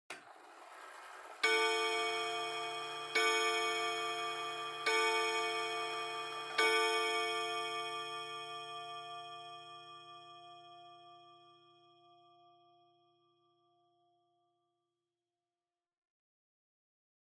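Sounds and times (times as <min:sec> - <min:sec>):
long pendulum clock chime: 0:00.2 - 0:13.1.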